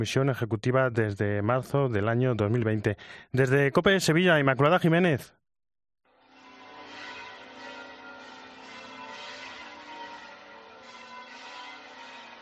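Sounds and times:
speech: 0.0s - 5.4s
Giralda cathedral church bells pealing in Seville Spain: 6.1s - 12.4s.

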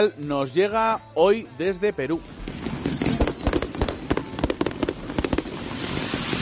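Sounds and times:
speech: 0.0s - 2.4s
string of firecrackers popping and banging at night: 2.2s - 6.4s.

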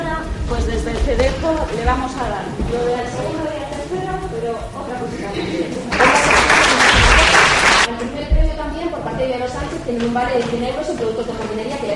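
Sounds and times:
speech: 0.5s - 6.7s, 7.9s - 11.9s
audience applause: 5.9s - 7.9s.

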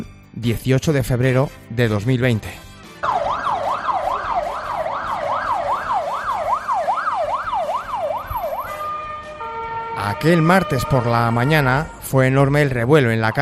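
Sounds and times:
speech: 0.0s - 2.7s, 10.0s - 13.3s
police patrol car siren wailing: 3.0s - 13.3s
steady traffic rumble: 3.0s - 13.3s.

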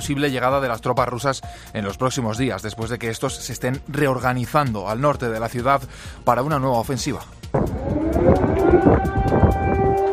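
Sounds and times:
speech: 0.0s - 9.4s
air raid sirens wailing: 7.5s - 10.1s.

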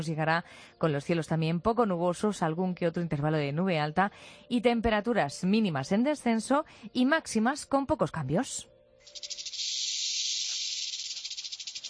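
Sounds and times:
speech: 0.0s - 9.4s
snake hissing: 9.0s - 11.8s.

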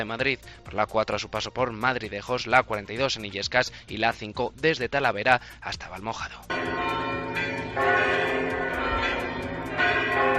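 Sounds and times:
speech: 0.0s - 8.2s
large cathedral bells ringing in overlapping peals: 6.5s - 10.3s.

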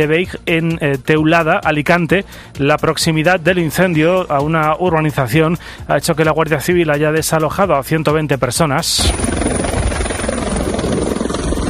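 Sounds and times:
speech: 0.0s - 9.6s
firefighting helicopter flying overhead: 8.9s - 11.6s.

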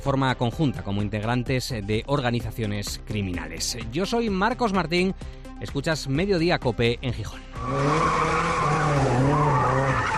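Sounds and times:
speech: 0.0s - 9.1s
car tires squealing and skidding in an illegal street race: 7.5s - 10.1s.

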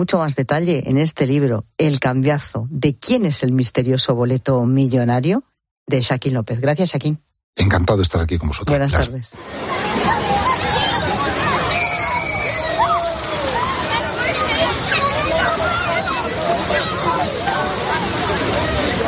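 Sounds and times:
speech: 0.0s - 10.3s
children's high shouts and calls on a beach: 9.4s - 19.0s
surf and sloshing water on a beach: 9.4s - 19.0s.

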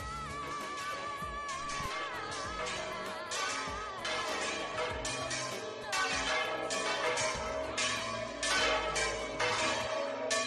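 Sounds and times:
several church bells ringing in a peal: 0.4s - 10.4s.

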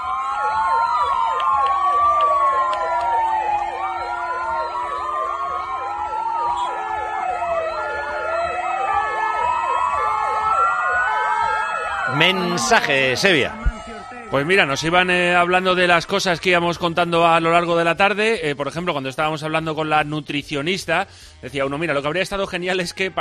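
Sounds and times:
many ambulance sirens sounding together at the door of a house: 0.0s - 17.6s
speech: 12.3s - 13.7s, 14.3s - 23.1s.

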